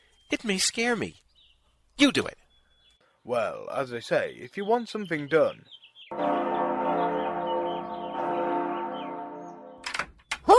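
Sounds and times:
speech: 0.3s - 1.2s, 2.0s - 2.4s, 3.2s - 6.6s
bell ringing: 6.1s - 9.8s.

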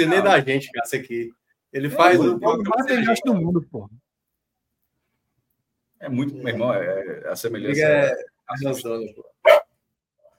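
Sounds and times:
speech: 0.0s - 4.0s, 6.0s - 9.7s
dog barking: 9.4s - 9.7s.

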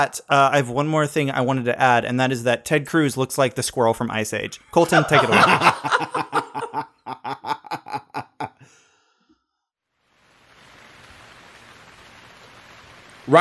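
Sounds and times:
speech: 0.0s - 6.4s
rhythmic laughter: 4.7s - 8.7s
rain pouring onto the street: 10.2s - 13.3s.

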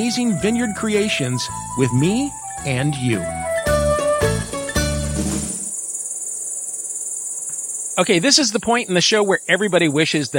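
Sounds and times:
speech: 0.0s - 3.4s, 8.0s - 10.3s
cicadas buzzing: 0.0s - 10.3s.

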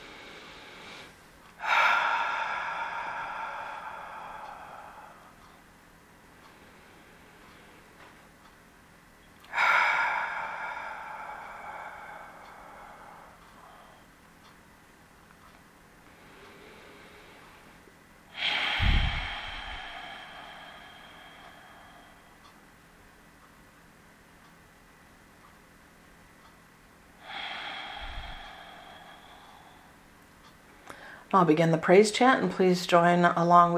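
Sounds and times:
long slow deep breaths during a guided centering exercise: 0.0s - 8.6s, 9.4s - 14.6s, 16.0s - 22.6s, 27.2s - 31.3s
speech: 31.3s - 33.7s.

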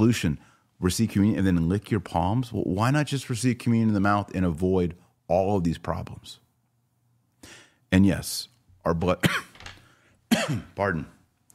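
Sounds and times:
speech: 0.0s - 6.4s, 7.4s - 9.5s, 10.5s - 11.2s
harsh throaty coughs: 9.2s - 9.6s, 10.3s - 10.8s.

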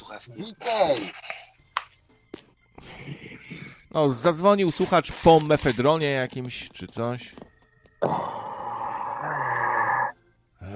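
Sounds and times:
speech: 0.1s - 1.3s, 2.8s - 8.5s
heavy breathing from phone caller: 2.8s - 3.9s
low strained groan from phone caller: 8.0s - 10.1s.

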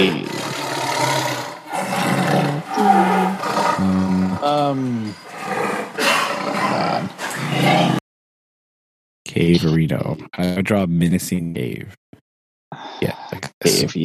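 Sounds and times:
person imitating a large animal with deep growls and roaring snarls: 0.0s - 1.2s, 1.8s - 5.2s, 6.0s - 8.0s, 12.8s - 14.0s
speech: 4.7s - 5.3s, 9.4s - 12.2s, 12.8s - 14.0s.

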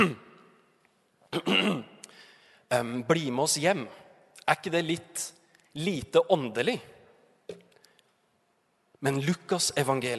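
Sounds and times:
person clearing throat: 0.0s - 0.2s, 1.3s - 2.0s
speech: 0.0s - 0.2s, 1.3s - 1.9s, 2.7s - 6.9s, 9.0s - 10.1s.

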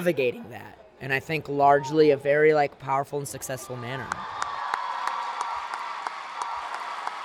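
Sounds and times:
speech: 0.0s - 4.4s
crowd applauding: 4.1s - 7.2s.

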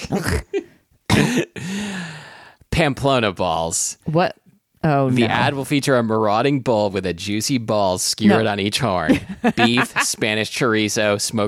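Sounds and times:
person coughing: 0.0s - 1.8s
speech: 0.1s - 0.6s, 2.8s - 11.4s
rough throat clearing: 1.1s - 1.6s
laughter: 9.1s - 10.4s.

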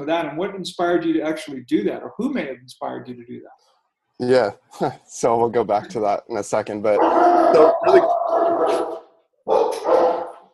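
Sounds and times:
speech: 0.0s - 8.9s
dog barking: 7.0s - 10.4s.

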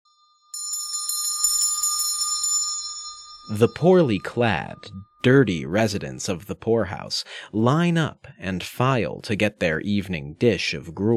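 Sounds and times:
dinner handbell being rung slowly: 0.4s - 5.2s
speech: 3.5s - 11.1s.

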